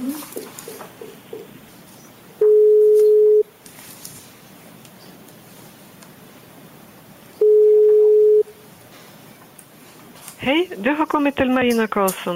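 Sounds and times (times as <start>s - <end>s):
single-pitch telephone ringback tone during an outgoing call: 2.4s - 3.5s, 7.4s - 8.5s
speech: 10.4s - 12.3s.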